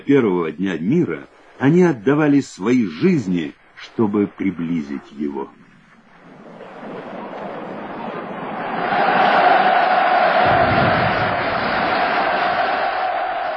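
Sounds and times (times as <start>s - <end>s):
speech: 0.0s - 5.7s
large crowd cheering at victory: 6.7s - 13.5s.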